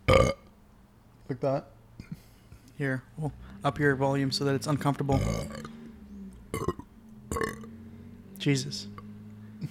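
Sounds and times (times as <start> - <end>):
person burping: 0.0 - 0.5, 5.1 - 5.8, 6.5 - 7.7
faint steady hum: 0.0 - 9.7
speech: 1.3 - 1.8, 2.8 - 5.7, 6.5 - 6.8, 8.4 - 9.0.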